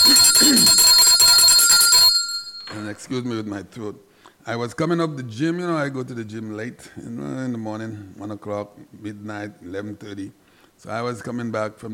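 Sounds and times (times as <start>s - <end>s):
bell ringing: 0.0s - 3.1s
speech: 3.0s - 11.9s.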